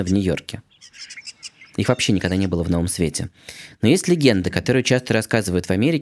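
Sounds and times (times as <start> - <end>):
speech: 0.0 - 1.2, 1.8 - 5.9
common starling chirps and whistles: 0.0 - 2.9.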